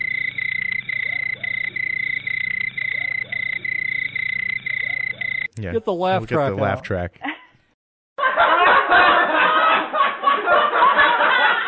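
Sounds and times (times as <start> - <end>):
crickets chirping added as a sound effect: 0.0 - 5.6
speech: 5.6 - 7.3
laughter: 5.6 - 7.4, 8.2 - 11.6.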